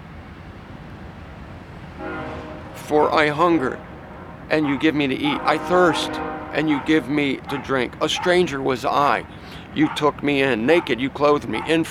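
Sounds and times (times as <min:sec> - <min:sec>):
passing train rumbling: 0:00.0 - 0:11.8
train horn: 0:02.0 - 0:04.4, 0:05.1 - 0:07.4
speech: 0:02.9 - 0:03.9, 0:04.5 - 0:11.8.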